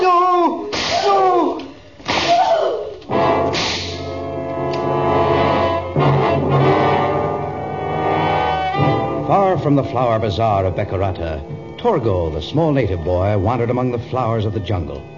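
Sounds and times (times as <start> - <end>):
sharp loud whip lashes cracking: 0.7 - 1.3, 2.0 - 2.7, 3.5 - 4.2
dramatic music: 2.1 - 14.2
speech: 9.7 - 15.1.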